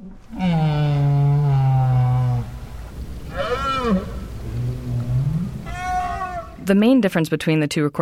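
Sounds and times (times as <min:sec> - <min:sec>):
right whale calls: 0:00.0 - 0:06.7
faint watery background: 0:00.0 - 0:08.0
speech: 0:06.7 - 0:08.0.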